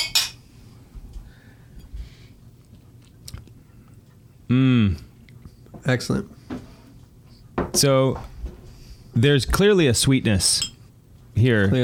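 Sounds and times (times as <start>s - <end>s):
glasses of rum clinking in a toast: 0.0s - 0.4s, 10.5s - 10.8s
speech: 4.5s - 5.0s, 5.9s - 6.4s, 7.8s - 8.3s, 9.2s - 10.7s, 11.4s - 11.8s.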